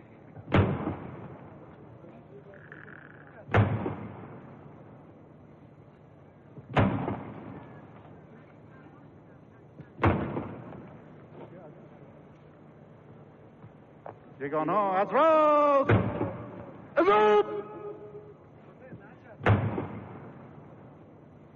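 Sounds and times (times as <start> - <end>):
ceremonial salute cannon shots booming at a military review across open ground: 0.5 - 1.4, 3.5 - 4.4, 6.7 - 7.7, 10.0 - 10.8, 15.8 - 16.8, 19.4 - 20.5
speech: 14.4 - 16.0, 17.0 - 17.5.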